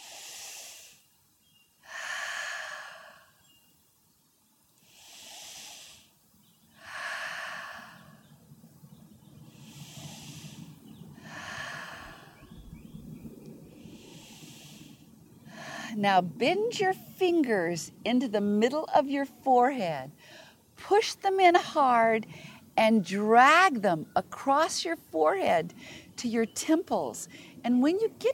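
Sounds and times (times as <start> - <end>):
forceful rhythmic breaths during a breathing exercise: 0.0 - 1.1, 1.8 - 3.4, 4.8 - 6.2, 6.8 - 8.4, 9.4 - 12.4, 13.8 - 16.1
speech: 16.0 - 28.3.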